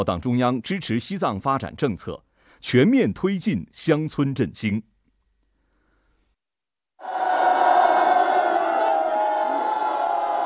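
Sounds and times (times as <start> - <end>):
speech: 0.0 - 4.9
villagers cheering along a roadside: 7.0 - 10.4.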